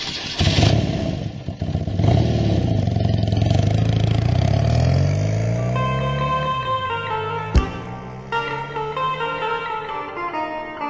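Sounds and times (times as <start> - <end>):
motorcycle engine revving: 0.2 - 10.3
sharp clank: 7.5 - 8.0.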